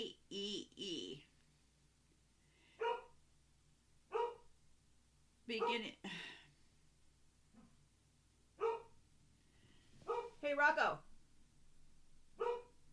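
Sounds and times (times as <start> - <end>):
person calling out: 0.0 - 1.3
dog barking: 2.8 - 3.2, 4.1 - 4.5, 5.6 - 5.9, 8.6 - 9.0, 10.1 - 10.4, 12.4 - 12.8
speech: 5.5 - 6.4.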